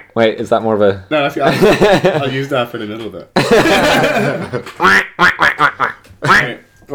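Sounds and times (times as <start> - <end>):
speech: 0.2 - 5.5
laughter: 1.4 - 2.4, 3.4 - 5.0
person imitating duck quacks: 4.8 - 6.6.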